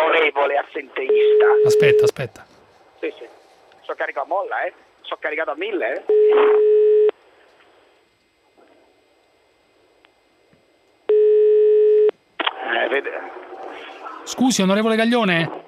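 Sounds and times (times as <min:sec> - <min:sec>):
speech: 0:00.4 - 0:06.8, 0:12.7 - 0:13.4, 0:14.3 - 0:15.6
quiet phone line hiss: 0:01.0 - 0:02.3, 0:06.1 - 0:08.0, 0:11.1 - 0:12.8
telephone ringback tone on an outgoing call: 0:01.1 - 0:02.1, 0:06.1 - 0:07.1, 0:11.1 - 0:12.1.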